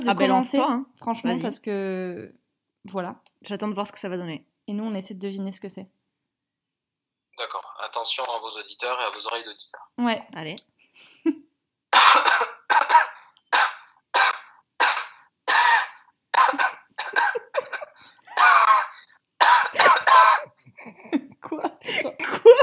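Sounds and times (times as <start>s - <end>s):
speech: 0.0s - 6.0s, 7.4s - 11.5s
coughs tracing the melody of a national anthem: 12.0s - 20.9s.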